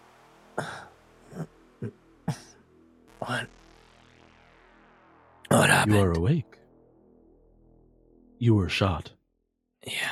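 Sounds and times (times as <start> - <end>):
speech: 0.6 - 2.0, 5.6 - 6.6, 8.4 - 9.2
weak raspy cough: 0.6 - 2.6.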